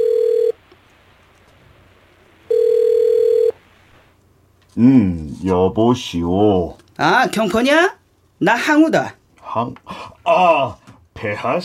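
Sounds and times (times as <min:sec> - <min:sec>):
telephone ringback tone: 0:00.0 - 0:00.6, 0:02.5 - 0:03.6
speech: 0:04.8 - 0:11.6.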